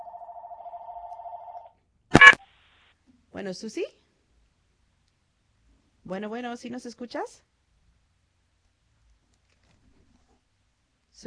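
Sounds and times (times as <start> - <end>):
telephone tone as a call connects: 0.0 - 2.4
burst of noise: 2.1 - 2.4
speech: 3.4 - 4.0, 6.1 - 7.5.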